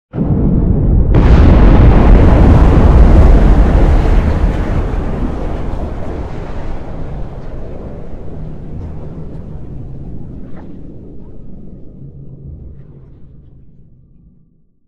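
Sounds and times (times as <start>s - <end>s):
fusion weapon explosion: 0.1s - 11.4s.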